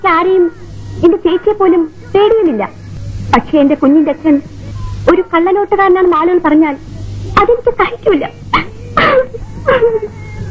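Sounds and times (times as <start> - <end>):
speech: 0.0 - 8.5, 9.1 - 10.2
woman crying: 8.5 - 10.4.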